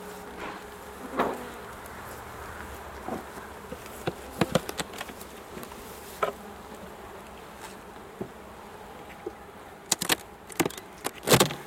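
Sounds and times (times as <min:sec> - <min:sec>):
honeybees buzzing as a smoked beehive is opened: 0:00.0 - 0:11.6
sharp clicks and knocks from opening a beehive: 0:03.1 - 0:05.2, 0:09.1 - 0:11.6.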